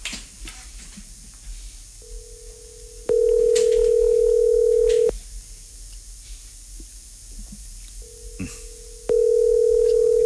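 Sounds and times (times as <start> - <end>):
faint noise: 0.0 - 10.2
telephone call ringing out on the line: 2.0 - 5.1, 8.0 - 10.2.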